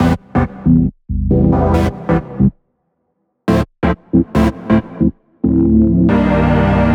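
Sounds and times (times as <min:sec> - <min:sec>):
138 BPM dubstep chord loop in Am Dm Cm: 0:01.3 - 0:02.4, 0:03.5 - 0:06.9.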